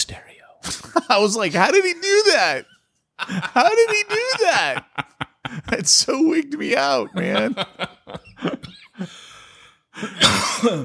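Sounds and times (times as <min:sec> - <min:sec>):
laughter: 0:00.6 - 0:09.3
speech: 0:01.0 - 0:05.1, 0:05.7 - 0:09.2, 0:10.0 - 0:10.8
person coughing: 0:08.4 - 0:09.2, 0:10.0 - 0:10.8.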